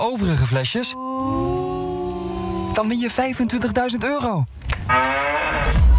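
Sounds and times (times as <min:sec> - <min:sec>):
speech: 0:00.0 - 0:01.8, 0:02.8 - 0:05.8
cow mooing: 0:04.9 - 0:05.8.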